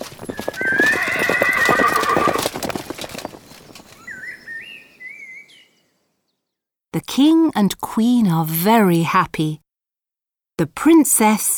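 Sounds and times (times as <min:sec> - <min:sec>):
ridden horses galloping: 0:00.0 - 0:04.6
horse neighing: 0:00.2 - 0:02.7
speech: 0:07.2 - 0:09.6, 0:10.6 - 0:11.5.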